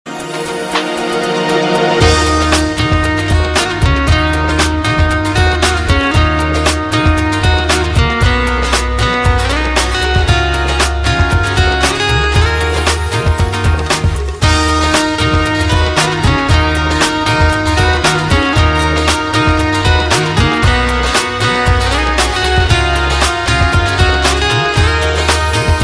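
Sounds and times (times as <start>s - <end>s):
guitar: 0.1s - 25.8s.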